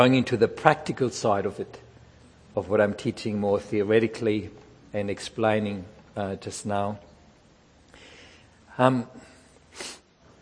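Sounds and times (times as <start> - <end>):
speech: 0.0 - 1.8, 2.6 - 7.1, 8.8 - 10.0
person blowing nose with a throaty snort: 9.7 - 10.1.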